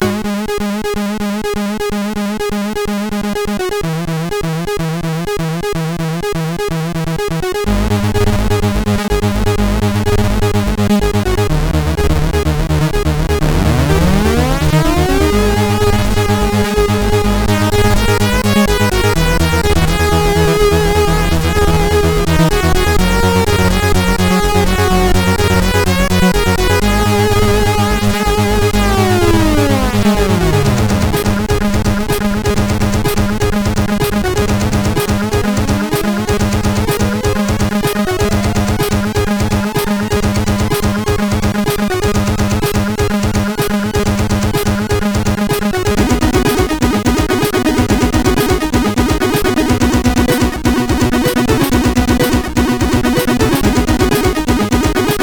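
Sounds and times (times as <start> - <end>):
Spec 48k chiptune remix on SID CSG8580R5 chip: 0.0 - 55.2.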